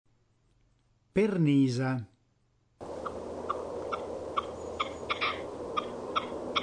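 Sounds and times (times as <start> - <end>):
constant background hiss: 0.1 - 6.6
partridge calling: 2.8 - 6.6.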